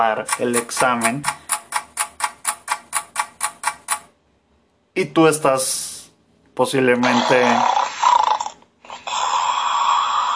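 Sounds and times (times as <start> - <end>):
speech: 0.0 - 1.4, 5.0 - 5.9, 6.6 - 7.8
person snoring: 7.0 - 10.3.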